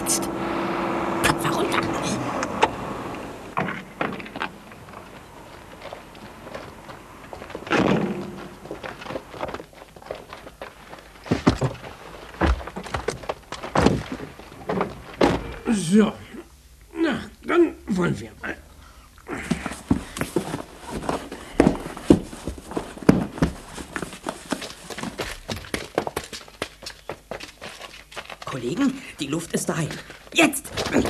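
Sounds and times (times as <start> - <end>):
delivery van pulling up and stopping: 0.0 - 11.3
speech: 0.1 - 0.4, 15.9 - 16.2
footsteps: 3.6 - 15.6, 19.3 - 31.0
heavy thunks and knocks of crates being handled and set down: 5.8 - 15.6, 19.3 - 26.6, 29.9 - 31.0
door: 14.7 - 15.6.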